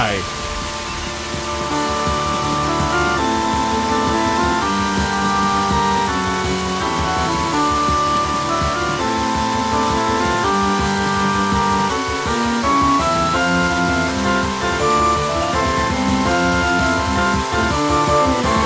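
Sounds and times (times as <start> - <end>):
steady dense rain: 0.0 - 18.6.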